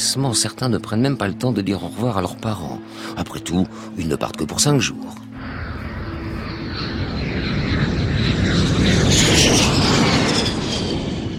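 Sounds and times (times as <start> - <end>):
speech: 0.1 - 5.4
Uruguayan Air Force Fairchild military airplane taking off: 5.2 - 11.3.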